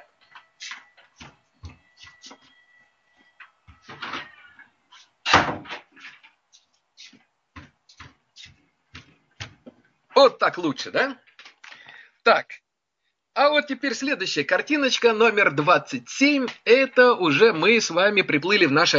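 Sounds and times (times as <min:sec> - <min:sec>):
door being closed with handle and frame rattling: 0:05.2 - 0:05.9
speech: 0:10.2 - 0:11.3, 0:12.3 - 0:12.6, 0:13.4 - 0:18.9.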